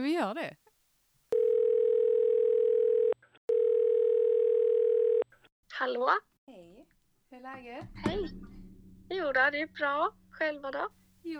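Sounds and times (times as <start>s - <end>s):
speech: 0.0s - 0.6s, 5.8s - 11.3s
telephone ringing tone while calling someone: 1.4s - 5.2s.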